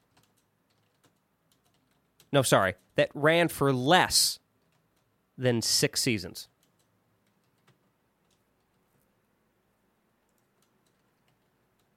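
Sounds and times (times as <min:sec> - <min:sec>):
typing on a computer keyboard: 0:00.0 - 0:03.0, 0:04.6 - 0:05.2, 0:06.5 - 0:09.0, 0:10.2 - 0:11.9
speech: 0:02.3 - 0:04.4, 0:05.4 - 0:06.5.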